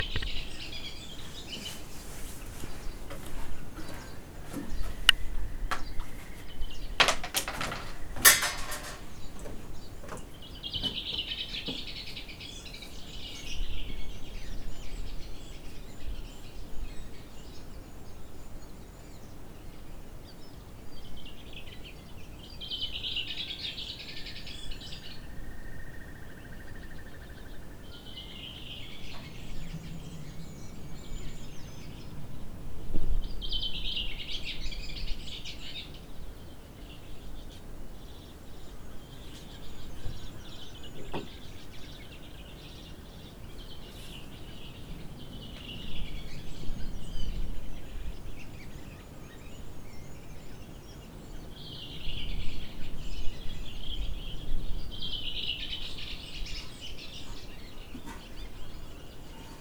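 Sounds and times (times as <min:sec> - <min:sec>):
birds at a cabin porch: 0:00.0 - 0:59.5.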